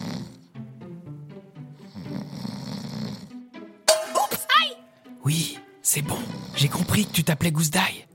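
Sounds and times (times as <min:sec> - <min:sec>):
heavy human snoring with rough rattling breaths in a dark bedroom: 0:00.0 - 0:00.6, 0:01.8 - 0:03.4, 0:06.2 - 0:07.3
speech: 0:05.2 - 0:08.1.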